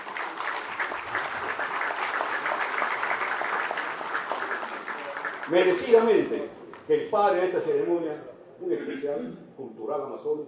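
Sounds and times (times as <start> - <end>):
audience clapping at an award ceremony: 0.0 - 6.9
speech: 5.5 - 10.4.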